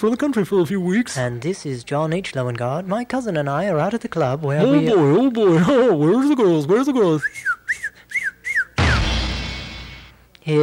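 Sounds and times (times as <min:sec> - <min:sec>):
speech: 0:00.0 - 0:07.9, 0:10.4 - 0:10.6
man wolf-whistling at women: 0:07.2 - 0:09.0.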